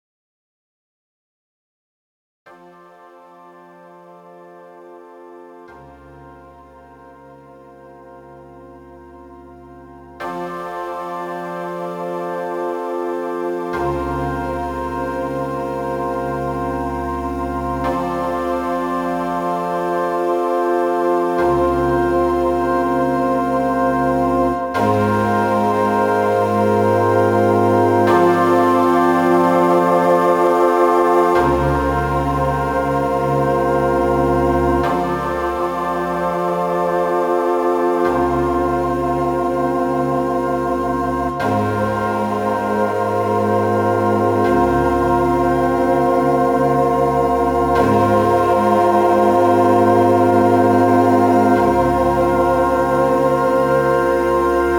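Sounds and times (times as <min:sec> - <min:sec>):
world instruments playing: 0:11.4 - 0:54.7.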